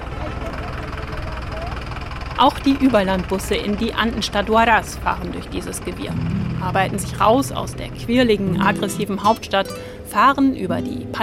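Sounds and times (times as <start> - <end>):
dense street traffic with engines idling and rumbling: 0.0 - 10.7
speech: 2.4 - 11.2.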